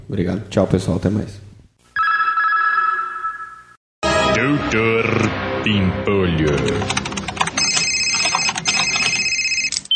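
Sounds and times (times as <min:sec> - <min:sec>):
speech: 0:00.1 - 0:01.4, 0:04.4 - 0:07.1
telephone ringing with electronic tone: 0:02.0 - 0:03.8, 0:07.5 - 0:09.9.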